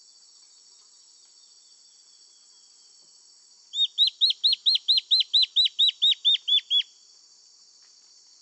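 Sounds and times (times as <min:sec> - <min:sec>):
Black-faced antbird Myrmoborus myotherinus ochrolaemus whistled call: 0:03.8 - 0:06.9.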